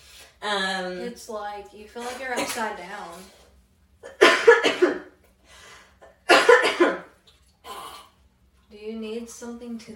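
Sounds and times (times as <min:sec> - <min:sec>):
speech: 0:00.4 - 0:03.4, 0:08.7 - 0:09.9
harsh COVID coughing fit: 0:04.0 - 0:05.2, 0:06.0 - 0:08.1.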